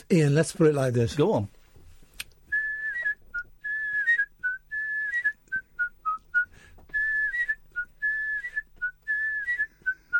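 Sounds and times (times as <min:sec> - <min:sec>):
speech: 0:00.0 - 0:01.6
person whistling a TV theme tune: 0:02.5 - 0:10.1.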